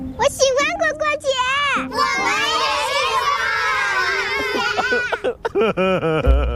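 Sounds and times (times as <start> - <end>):
speech: 0.1 - 2.7, 5.2 - 6.3
cartoon character crying and sobbing: 3.0 - 5.6
laughter: 3.6 - 6.5.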